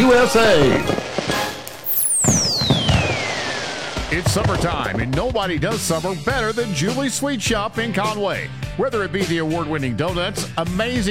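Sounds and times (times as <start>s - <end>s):
firework rocket whistling with a descending tone: 0.0s - 4.9s
firework pops and crackling bursts: 0.0s - 5.7s
speech: 0.1s - 1.4s, 4.2s - 11.0s.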